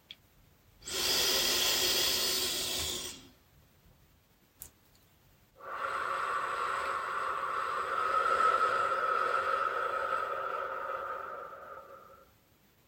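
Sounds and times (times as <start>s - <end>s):
slow deep inhale through nose and exhale: 0.8s - 3.4s, 5.6s - 12.3s.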